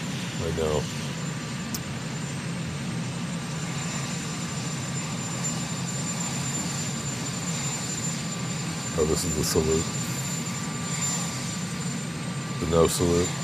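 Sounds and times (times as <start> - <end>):
helicopter engine running with a rumbling whine: 0.0 - 13.4
speech: 0.4 - 1.0, 9.0 - 10.0, 12.7 - 13.4.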